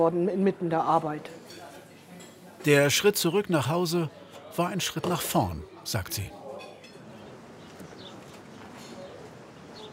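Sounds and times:
speech: 0:00.0 - 0:01.5, 0:02.6 - 0:06.4
small birds chirping in the bird aviary at the Wilhelmshöhe: 0:07.1 - 0:09.9.

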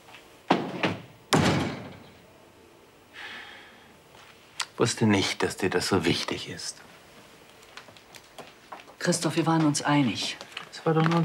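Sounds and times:
door pushed shut with a firm closing thud: 0:00.5 - 0:02.2
speech: 0:04.8 - 0:07.0, 0:09.0 - 0:11.2.

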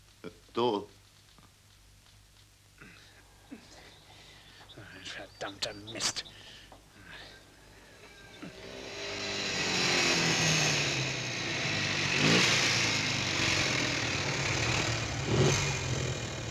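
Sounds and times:
speech: 0:00.6 - 0:01.0, 0:05.4 - 0:06.4
German car engine struggling and stalling: 0:08.3 - 0:16.4.

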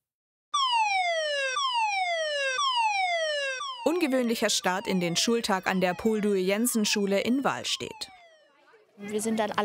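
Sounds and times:
civil warning siren wailing in Germany's nationwide warning day: 0:00.6 - 0:09.0
speech: 0:03.8 - 0:08.2, 0:09.0 - 0:09.6.

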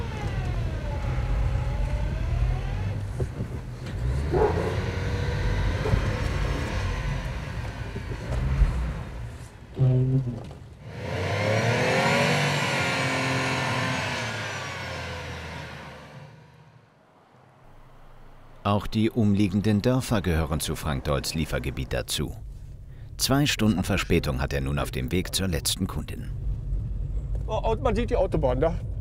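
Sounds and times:
delivery lorry engine revving with tyres stuck: 0:00.0 - 0:18.7
speech: 0:18.7 - 0:22.5, 0:23.2 - 0:26.4, 0:27.5 - 0:28.9.

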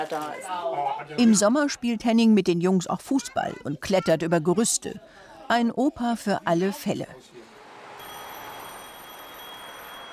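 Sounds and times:
speech: 0:00.0 - 0:07.5
telephone bell ringing: 0:08.0 - 0:10.1.

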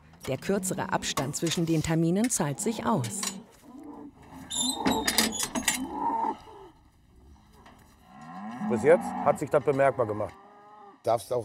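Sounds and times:
speech: 0:00.2 - 0:03.4, 0:08.8 - 0:11.4
Angus bull mooing in a hoof-trimming crate: 0:02.5 - 0:11.1.

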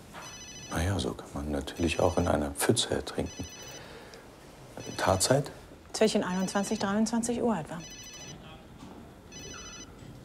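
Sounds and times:
mobile phone ringing with a bright electronic tone: 0:00.2 - 0:04.0, 0:04.8 - 0:05.5, 0:06.2 - 0:07.2, 0:07.8 - 0:08.4, 0:09.3 - 0:10.0
speech: 0:00.8 - 0:03.7, 0:04.8 - 0:08.0.

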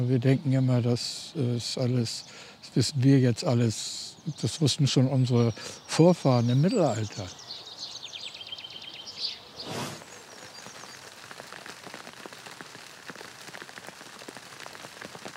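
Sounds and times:
speech: 0:00.0 - 0:07.4
faint bird chirps: 0:04.0 - 0:11.1
hail pelting down: 0:10.2 - 0:15.3.

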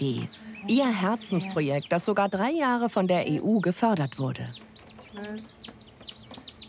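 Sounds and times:
speech: 0:00.0 - 0:05.7
young chickens of a hardy breed peeping and clucking: 0:00.0 - 0:06.6.

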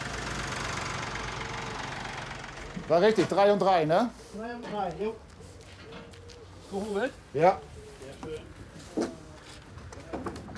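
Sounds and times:
tractor engine running with rhythmic knocking: 0:00.0 - 0:03.9
speech: 0:02.9 - 0:05.3, 0:06.7 - 0:09.1.

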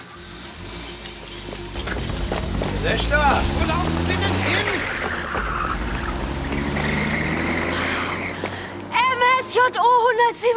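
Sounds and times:
car engine roaring: 0:00.0 - 0:09.7
car tires squealing: 0:00.0 - 0:09.7
speech: 0:02.8 - 0:04.9, 0:09.5 - 0:10.5.

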